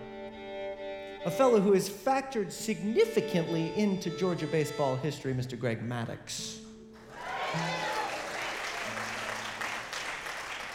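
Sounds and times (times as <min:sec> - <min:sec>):
speech: 0:01.2 - 0:06.6
crowd applauding: 0:07.0 - 0:10.7.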